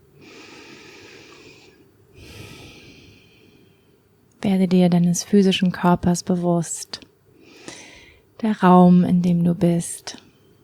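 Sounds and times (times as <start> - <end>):
deep breath in and out: 0.2 - 4.1, 7.3 - 8.3
speech: 4.5 - 7.0, 8.4 - 10.2.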